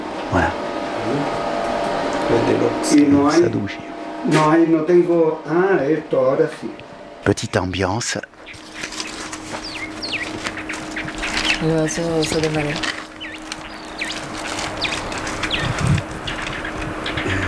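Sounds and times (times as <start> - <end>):
steady outdoor hum: 0.0 - 17.4
speech: 2.3 - 8.6, 11.6 - 13.0
small bird chirping: 8.4 - 17.4
low voice-like call: 17.2 - 17.4.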